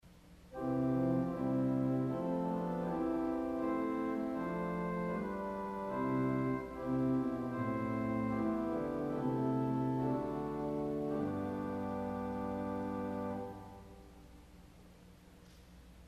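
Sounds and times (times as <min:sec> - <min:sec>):
organ playing on a Viole de Gambe stop: 0:00.5 - 0:14.5.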